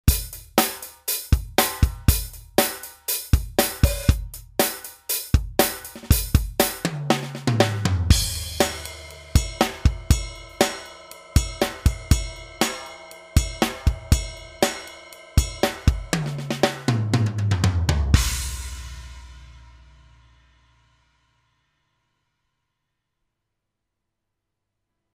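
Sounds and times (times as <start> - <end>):
TD-20 electronic drum pop pattern: 0.0 - 19.3.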